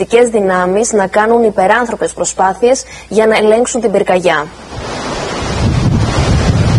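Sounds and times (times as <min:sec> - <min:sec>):
speech: 0:00.0 - 0:05.2
strong wind blowing during a wildfire near a settlement on Lesbos: 0:04.6 - 0:06.7.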